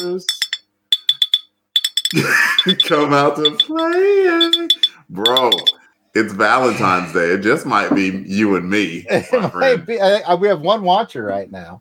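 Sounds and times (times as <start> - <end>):
glasses clinking together: 0.0 - 5.8
speech: 0.1 - 0.5, 2.1 - 11.7
laughter: 2.2 - 3.9, 6.2 - 10.5.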